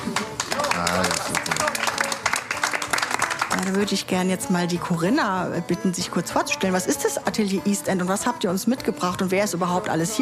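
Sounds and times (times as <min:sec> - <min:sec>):
audience applause: 0:00.0 - 0:03.8
speech: 0:03.6 - 0:10.2.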